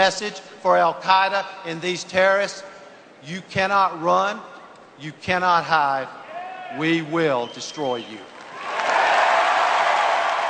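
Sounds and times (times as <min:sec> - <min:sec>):
speech: 0:00.0 - 0:08.3
crowd applauding at a political convention: 0:08.4 - 0:10.4.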